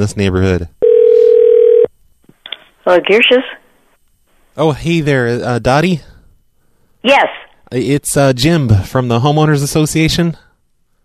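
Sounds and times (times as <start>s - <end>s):
speech: 0.0s - 0.8s, 2.9s - 3.6s, 4.6s - 6.1s, 7.0s - 10.4s
telephone dial tone after call hang-up: 0.8s - 1.9s.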